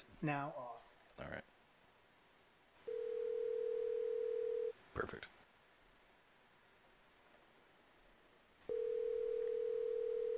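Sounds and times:
speech: 0:00.0 - 0:00.6, 0:01.2 - 0:01.5, 0:05.0 - 0:05.4
telephone line tone: 0:02.9 - 0:04.7, 0:08.7 - 0:10.3.

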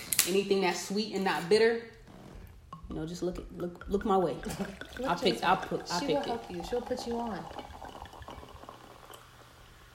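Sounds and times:
speech: 0:00.2 - 0:02.0, 0:02.9 - 0:07.7
wine pouring into a glass: 0:02.6 - 0:09.9.

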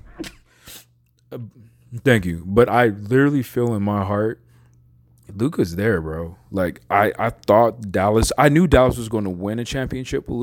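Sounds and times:
person sneezing: 0:00.0 - 0:00.9
speech: 0:01.3 - 0:04.4, 0:05.4 - 0:10.4.

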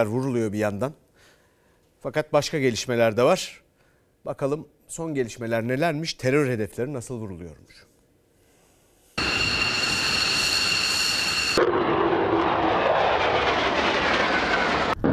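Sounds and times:
speech: 0:00.0 - 0:01.0, 0:02.0 - 0:03.6, 0:04.2 - 0:07.9
military jet engines roaring and whining as jets take off: 0:09.2 - 0:15.0.

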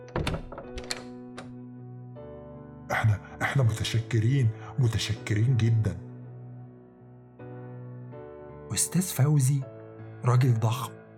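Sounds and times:
door bolt sliding back with a heavy clunk: 0:00.0 - 0:01.6
speech: 0:03.0 - 0:06.0, 0:08.8 - 0:11.0.

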